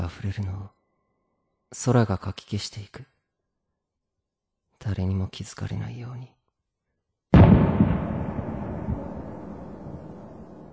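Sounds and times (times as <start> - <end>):
speech: 0.1 - 0.8, 1.7 - 3.1, 4.8 - 6.4
single loud firework bursting with deep boom: 7.4 - 10.7.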